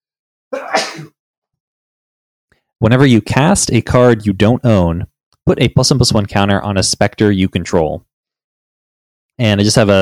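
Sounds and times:
loud sneeze: 0.6s - 1.2s
speech: 2.8s - 8.1s, 9.4s - 10.0s.

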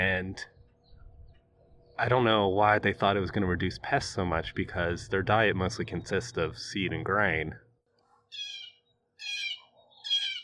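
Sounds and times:
speech: 0.0s - 0.5s, 2.0s - 7.6s
blue jay calling near a bird feeder: 8.3s - 10.4s.

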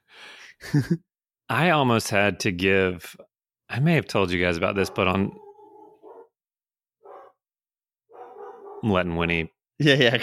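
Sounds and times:
speech: 0.7s - 5.4s, 8.8s - 10.2s
dog barking: 4.8s - 6.4s, 7.0s - 7.4s, 8.1s - 8.9s
laughter: 9.8s - 10.2s.

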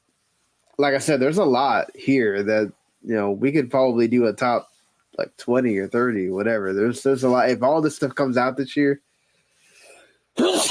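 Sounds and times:
speech: 0.8s - 9.1s
person sneezing: 9.9s - 10.6s.

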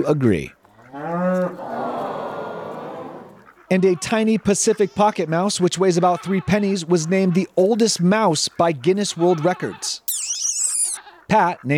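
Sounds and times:
speech: 0.0s - 0.6s, 3.7s - 10.2s, 11.3s - 11.7s
cow mooing: 0.8s - 1.6s
laughter: 0.9s - 3.4s.

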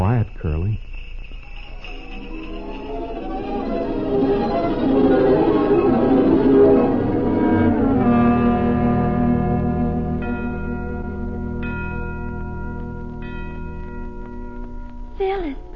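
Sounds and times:
sleigh bells ringing: 0.0s - 15.7s.

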